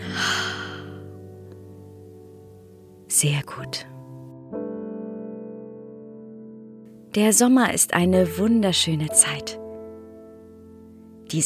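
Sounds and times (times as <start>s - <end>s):
slow deep exhale: 0.0s - 1.0s
soft sustained music tones: 0.0s - 11.4s
speech: 3.2s - 4.0s, 7.1s - 9.6s.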